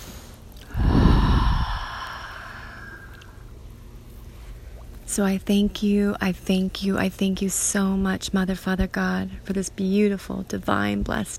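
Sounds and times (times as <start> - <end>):
deep breath taken during a guided prayer: 0.0 - 3.4
speech: 5.2 - 11.3.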